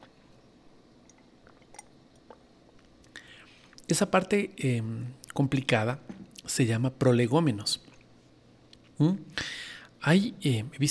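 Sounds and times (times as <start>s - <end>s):
sipping of tea: 1.0s - 3.9s
speech: 3.9s - 7.8s, 9.0s - 10.9s.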